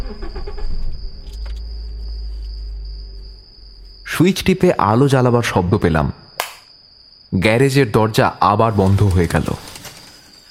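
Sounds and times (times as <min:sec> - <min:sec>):
car engine rumble driving into a garage: 0:00.0 - 0:05.3
speech: 0:04.2 - 0:06.2, 0:07.3 - 0:09.7.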